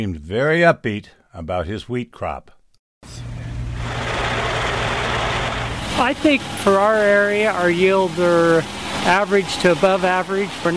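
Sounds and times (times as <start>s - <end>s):
speech: 0.0s - 2.6s, 6.0s - 10.7s
grain truck engines idling at a ranch outside Meridian Idaho: 3.1s - 10.7s.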